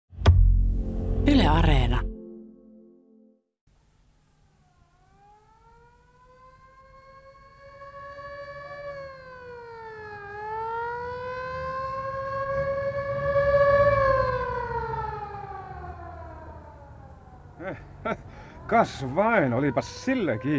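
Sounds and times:
speech: 0:01.2 - 0:02.1, 0:18.8 - 0:20.5
ambulance siren wailing: 0:04.7 - 0:20.5
low city traffic rumble: 0:06.4 - 0:20.5.

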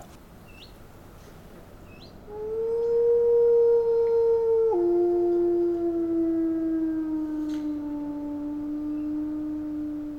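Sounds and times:
wolf howling: 0:02.3 - 0:10.1.

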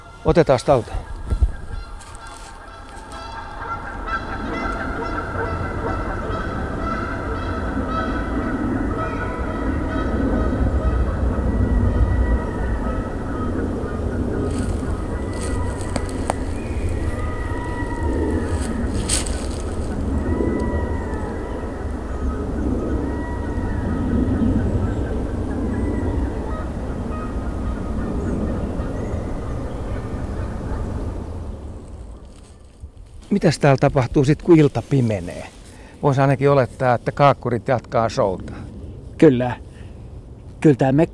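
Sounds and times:
flock of Canada geese honking overhead: 0:00.0 - 0:32.6
steady low outdoor rumble: 0:00.0 - 0:41.1
speech: 0:00.2 - 0:01.4, 0:33.4 - 0:38.6, 0:39.2 - 0:39.6, 0:40.6 - 0:41.1.

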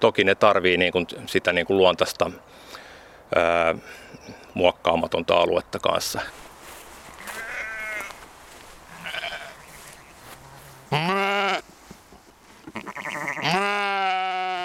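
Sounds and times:
speech: 0:00.0 - 0:06.4, 0:10.9 - 0:11.2
sheep bleating while grazing on a natural meadow: 0:07.2 - 0:08.2, 0:08.8 - 0:11.6, 0:12.6 - 0:14.6.

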